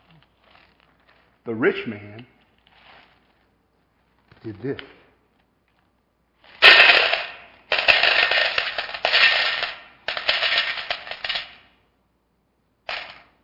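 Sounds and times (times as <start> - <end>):
speech: 1.5 - 2.4, 4.4 - 5.0
coins pouring and clattering: 6.6 - 11.6.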